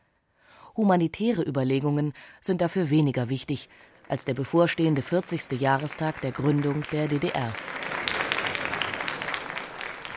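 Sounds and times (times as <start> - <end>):
speech: 0.8 - 7.9
guests applauding in a banquet hall: 3.9 - 10.1.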